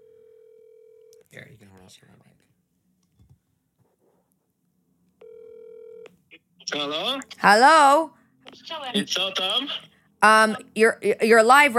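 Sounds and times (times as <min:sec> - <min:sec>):
steady telephone tone while dialing in to a call: 0:00.0 - 0:01.1, 0:05.2 - 0:06.1
speech: 0:01.3 - 0:02.6, 0:06.7 - 0:11.7.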